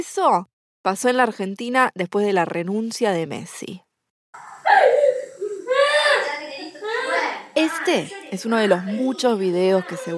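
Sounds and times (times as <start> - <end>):
speech: 0.0 - 3.8, 7.6 - 10.1
young boy crying inconsolably: 4.4 - 7.3.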